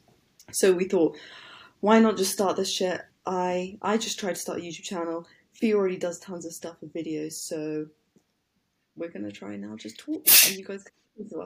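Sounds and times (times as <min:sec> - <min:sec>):
speech: 0:00.5 - 0:08.0, 0:09.0 - 0:11.4
person sneezing: 0:10.3 - 0:10.6.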